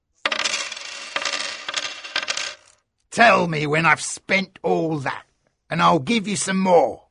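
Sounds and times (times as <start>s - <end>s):
gold coins put down on the hard surface of a bar: 0.2s - 2.8s
speech: 3.2s - 7.0s.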